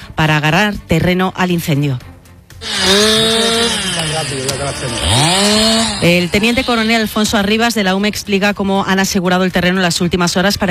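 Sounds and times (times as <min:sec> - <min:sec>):
speech: 0:00.2 - 0:02.1, 0:02.8 - 0:10.6
chainsaw cutting wood: 0:02.6 - 0:07.6.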